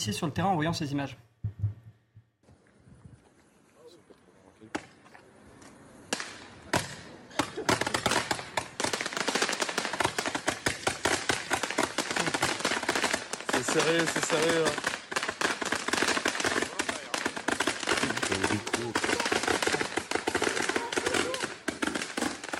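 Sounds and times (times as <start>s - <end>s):
speech: 0.0s - 1.3s, 13.8s - 15.0s
firework mortar cake firing 380-shot test barrage into the air: 6.1s - 22.5s.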